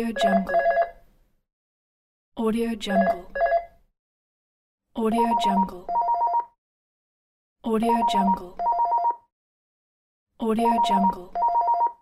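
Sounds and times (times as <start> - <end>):
landline phone ringing: 0.2 - 1.0, 3.0 - 3.7, 5.2 - 6.5, 7.9 - 9.2, 10.7 - 12.0.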